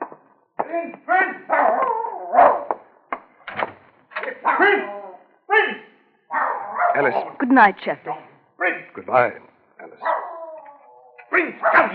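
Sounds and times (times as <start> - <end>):
speech: 0.7 - 1.5, 4.6 - 5.0, 7.0 - 8.2, 9.0 - 9.5
dog yelping and whimpering with whiny howl-like cries: 1.5 - 2.7, 6.3 - 7.4, 10.0 - 11.8.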